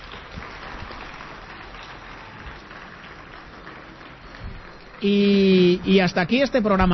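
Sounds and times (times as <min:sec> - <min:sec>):
audience applause at a live radio programme: 0:00.0 - 0:06.5
speech: 0:05.0 - 0:06.9.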